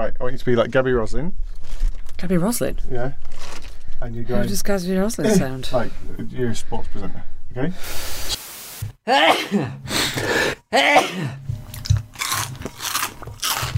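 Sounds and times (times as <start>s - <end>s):
speech: 0.3s - 8.4s, 9.0s - 11.4s
biting into a crunchy onion crisp: 11.7s - 13.7s.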